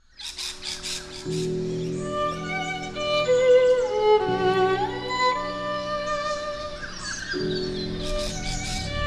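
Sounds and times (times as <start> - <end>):
birds squawking and chirping outside the School of Arts in a small country town in Australia: 0.0 - 9.0
sustained violin tones during the finals of a violin competition: 2.0 - 9.0.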